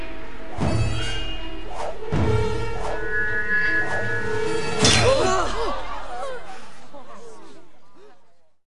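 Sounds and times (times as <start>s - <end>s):
sword being thrown: 0.7s - 5.5s
laughter: 5.0s - 8.2s.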